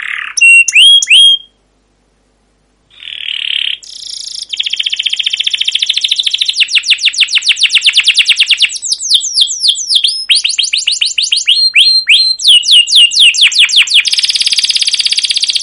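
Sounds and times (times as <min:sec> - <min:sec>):
canary long rolling chirping song: 0:00.0 - 0:01.7, 0:02.9 - 0:15.6.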